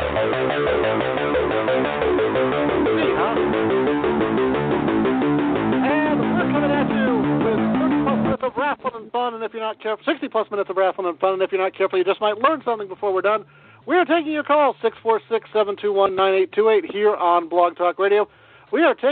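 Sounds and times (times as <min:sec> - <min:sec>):
podcast intro song with pulsing beat and sung vocals: 0:00.0 - 0:08.4
speech: 0:09.6 - 0:19.1.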